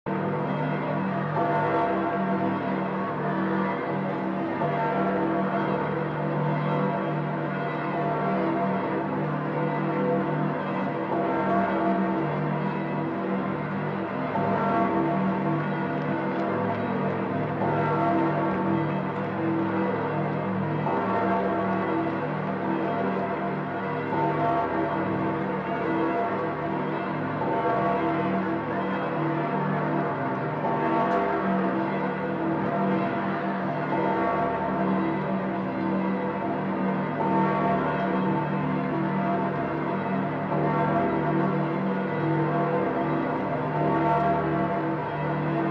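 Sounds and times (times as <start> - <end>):
bells of St. Peter ringing: 0.1 - 45.6.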